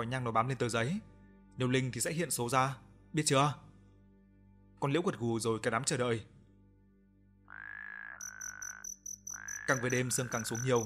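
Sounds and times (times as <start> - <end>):
speech: 0.0 - 3.6, 4.8 - 6.4, 9.7 - 10.8
frogs and toads croaking at night: 7.5 - 10.8
higher rapidly pulsed chirping: 8.2 - 10.8.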